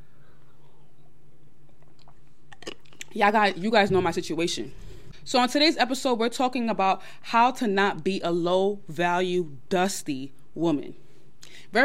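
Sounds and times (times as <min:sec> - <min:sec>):
low steady hum: 0:00.0 - 0:11.8
sipping and swallowing water: 0:01.7 - 0:03.2
plastic water bottle being opened: 0:01.8 - 0:03.2
speech: 0:03.1 - 0:11.8.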